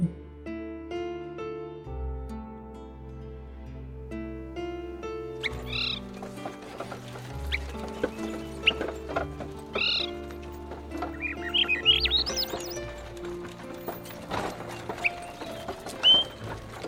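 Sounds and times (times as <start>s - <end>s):
gentle sustained musical backdrop: 0.0s - 16.8s
birds chirping and trilling in a June birch forest: 5.0s - 16.8s.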